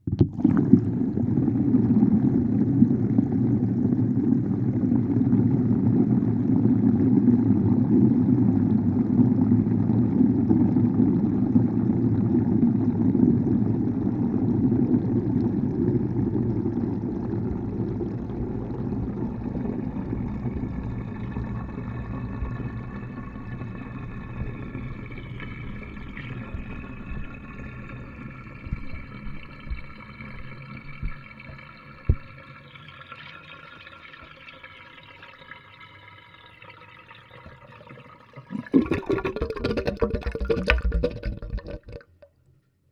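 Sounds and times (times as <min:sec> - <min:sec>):
bath draining recorded with a hydrophone: 0:00.0 - 0:42.5.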